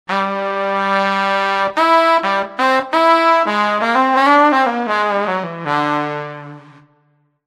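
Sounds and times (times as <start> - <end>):
saxophone section: 0.1 - 7.2.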